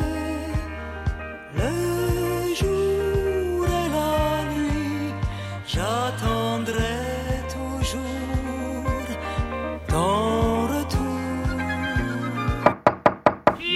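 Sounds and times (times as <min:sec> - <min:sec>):
music: 0:00.0 - 0:12.8
sharp knocks on a door: 0:12.7 - 0:13.6.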